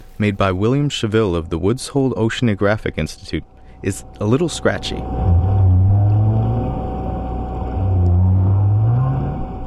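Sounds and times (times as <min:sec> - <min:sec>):
speech: 0:00.2 - 0:05.5
underwater engine-like noise: 0:03.9 - 0:09.6
right whales moaning underwater: 0:05.0 - 0:09.6.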